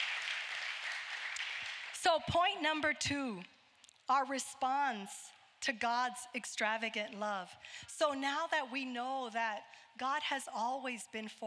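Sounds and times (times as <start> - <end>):
audience clapping hands: 0.0 - 2.3
speech: 2.0 - 11.4.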